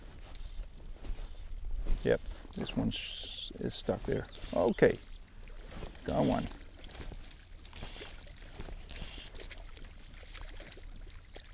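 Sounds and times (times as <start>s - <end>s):
speech: 2.0s - 5.1s, 6.1s - 6.6s
hooked garfish splashing in water: 5.2s - 11.5s.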